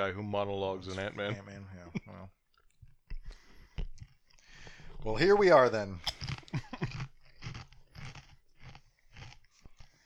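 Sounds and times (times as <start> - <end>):
speech: 0.0 - 2.4, 5.0 - 6.1
loud crunching while chewing food: 6.0 - 10.0.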